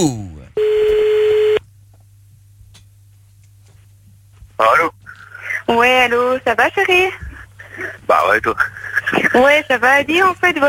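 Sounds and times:
speech: 0.0 - 0.3, 5.7 - 7.3, 8.1 - 10.6
faint low hum: 0.0 - 10.6
steady telephone tone as a call is placed: 0.6 - 1.6.

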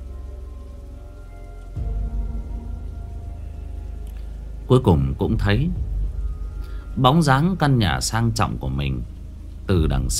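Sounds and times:
heavy rain: 0.0 - 10.1
thunder rumbling: 0.0 - 10.1
speech: 4.7 - 5.9, 7.0 - 10.1.

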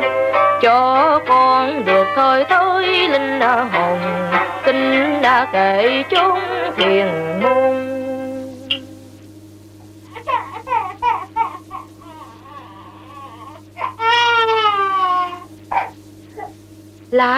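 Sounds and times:
speech: 0.6 - 8.0, 17.1 - 17.3
steady low hum: 1.0 - 17.3
infant crying and sobbing: 10.2 - 16.5.

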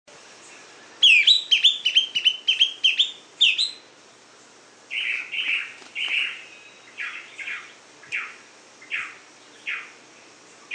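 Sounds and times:
Greenish schiffornis Schiffornis virescens song: 0.5 - 3.9, 4.9 - 9.9.

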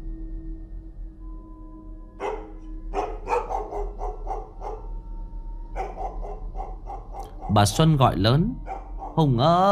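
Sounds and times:
household dog barking outside: 2.2 - 4.9, 5.8 - 7.7, 8.6 - 9.2
speech: 7.5 - 8.6, 9.2 - 9.6.

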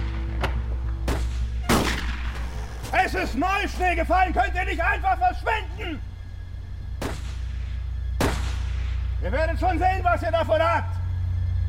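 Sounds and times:
steady low rumble: 0.0 - 11.6
rifle gunshots in a radio drama: 1.0 - 2.9, 7.0 - 9.2
speech: 3.1 - 6.1, 9.2 - 11.0.

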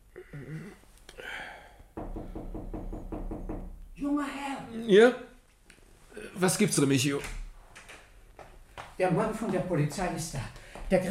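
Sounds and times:
knocking on a bedroom door: 2.0 - 3.9
speech: 4.0 - 5.3, 6.4 - 7.4, 9.0 - 11.0.

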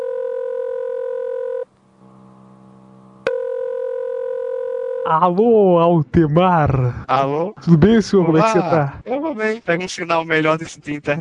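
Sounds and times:
telephone tones while dialing a five-digit number: 0.0 - 1.7, 3.3 - 5.1
speech: 5.1 - 11.1.

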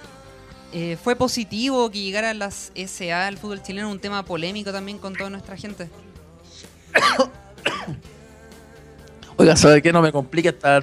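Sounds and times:
speech: 0.7 - 6.2, 6.9 - 7.4, 9.5 - 10.8
person coughing: 7.0 - 8.1.

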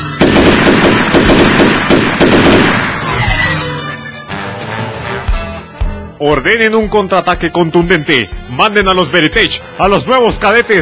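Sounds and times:
automatic gunfire in a battle scene: 0.2 - 3.3
speech: 6.2 - 10.7.

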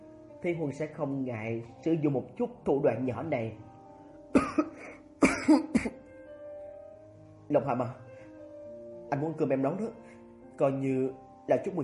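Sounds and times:
speech: 0.4 - 3.7, 5.5 - 6.0, 7.5 - 8.0, 9.1 - 10.0, 10.6 - 11.8
strong deliberate dry coughs: 4.3 - 6.0.

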